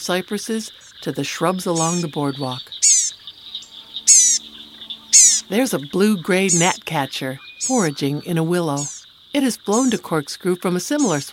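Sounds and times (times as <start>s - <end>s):
speech: 0.0s - 2.8s, 5.5s - 11.3s
insects humming in a swamp: 0.0s - 11.3s
northern parula calling high in a cypress: 1.7s - 8.0s, 8.8s - 9.0s.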